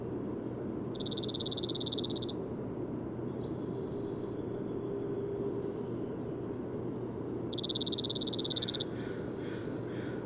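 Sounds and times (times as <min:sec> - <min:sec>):
soft low background hum: 0:00.0 - 0:10.2
bird trilling: 0:01.0 - 0:02.4, 0:07.5 - 0:10.2.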